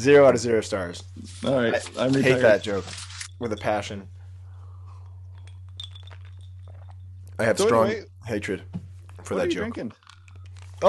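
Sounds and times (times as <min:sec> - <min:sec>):
speech: 0:00.0 - 0:04.2, 0:07.4 - 0:10.0
low electrical hum: 0:00.0 - 0:10.8
ice from iced coffee being chewed: 0:05.4 - 0:07.1.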